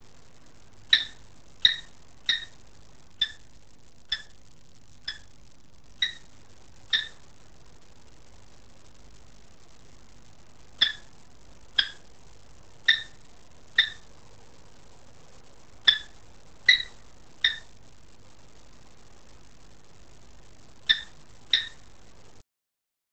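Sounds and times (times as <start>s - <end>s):
kestrel calling: 0.8s - 2.6s, 3.2s - 3.5s, 4.1s - 4.4s, 5.0s - 5.4s, 6.0s - 7.2s, 10.8s - 12.1s, 12.8s - 14.1s, 15.8s - 17.8s, 20.8s - 21.9s.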